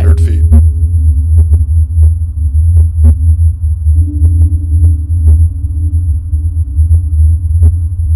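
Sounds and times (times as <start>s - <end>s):
deep steady low-frequency hum: 0.0s - 8.1s.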